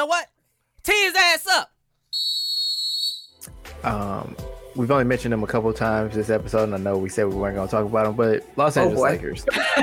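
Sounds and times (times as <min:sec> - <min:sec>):
speech: 0:00.0 - 0:01.7, 0:03.8 - 0:09.8
shrill whistle blast blown as a sound cue: 0:02.1 - 0:03.4
laughter: 0:09.4 - 0:09.8.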